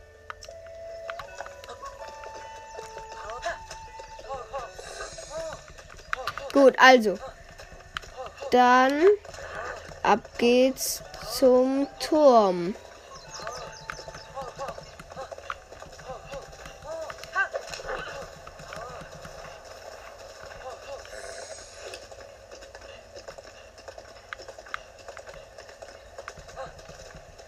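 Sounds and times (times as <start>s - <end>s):
video game horse hooves galloping: 0.0s - 27.4s
speech: 6.6s - 7.3s, 8.5s - 9.3s, 10.1s - 12.8s.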